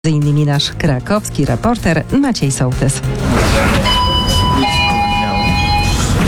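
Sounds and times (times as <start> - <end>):
speech: 0.1 - 3.8
train brakes releasing with a steady high whine: 3.4 - 6.2.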